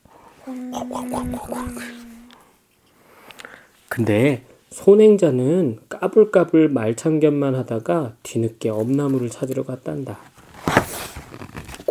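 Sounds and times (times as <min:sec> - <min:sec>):
speech: 0:00.4 - 0:02.0, 0:04.0 - 0:10.3
voice imitating water pouring into a bronze bowl: 0:00.4 - 0:02.4.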